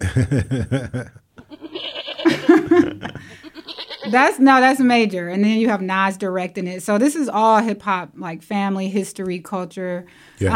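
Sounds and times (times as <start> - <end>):
laughter: 0.0 - 3.7
speech: 0.2 - 1.2, 4.1 - 10.5
goat bleating sound effect: 1.4 - 2.6, 3.3 - 4.4.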